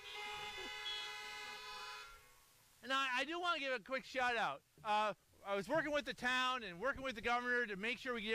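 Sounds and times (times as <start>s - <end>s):
car horns honking outdoors: 0.0s - 2.5s
speech: 2.8s - 8.3s.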